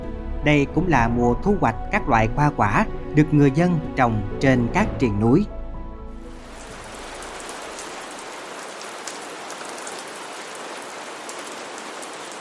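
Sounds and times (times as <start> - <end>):
speech: 0.4 - 5.6
early-season rain falling over forested mountains of the Thất Sơn region: 6.2 - 12.3
sharp rain drips popping: 6.4 - 12.3.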